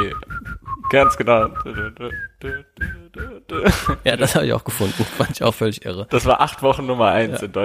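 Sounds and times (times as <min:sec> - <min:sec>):
whistled pop dance tune: 0:00.0 - 0:04.1
speech: 0:00.9 - 0:07.6
laughter or breath: 0:04.8 - 0:05.4.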